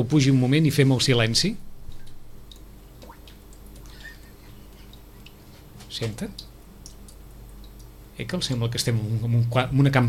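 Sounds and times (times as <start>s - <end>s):
speech: 0.0s - 1.7s, 6.0s - 6.5s, 8.2s - 10.0s
low continuous hum of noise: 0.5s - 9.6s
water dripping from an air conditioner drain into a bucket: 1.9s - 4.1s, 4.9s - 5.4s, 6.0s - 8.6s.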